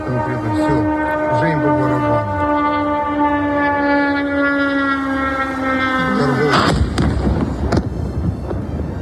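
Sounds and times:
siren-like wail over Kyiv during a drone and missile bombardment: 0.0 - 8.9
loud broadband burst during a drone and missile bombardment of Kyiv: 6.6 - 8.6.

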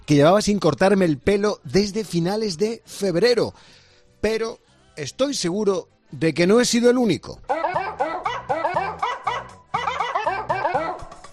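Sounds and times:
speech: 0.1 - 7.6
pitched dog barks forming a video game theme tune: 7.5 - 11.1.

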